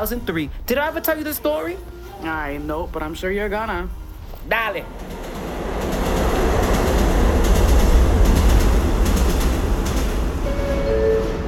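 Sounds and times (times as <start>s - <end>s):
speech: 0.0s - 5.2s
subway train rumbling along the rails: 3.4s - 11.4s
thin metallic squeal of a subway train: 10.4s - 11.4s.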